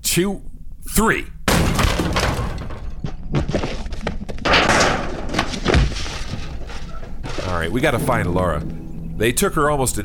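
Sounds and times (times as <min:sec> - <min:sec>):
speech: 0:00.2 - 0:01.4, 0:07.5 - 0:10.0
door forcefully kicked in: 0:01.5 - 0:03.2, 0:04.4 - 0:07.6
debris clattering: 0:01.5 - 0:10.0
heavy thuds: 0:01.5 - 0:10.0.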